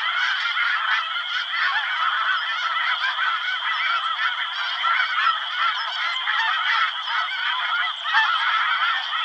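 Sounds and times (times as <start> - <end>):
snow goose flock calling: 0.0 - 9.2.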